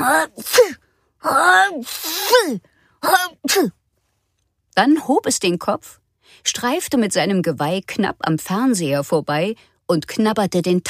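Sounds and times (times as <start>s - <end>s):
person acting out exaggerated sneezes: 0.0s - 0.8s, 1.8s - 3.8s
speech: 0.1s - 3.8s, 4.8s - 10.8s.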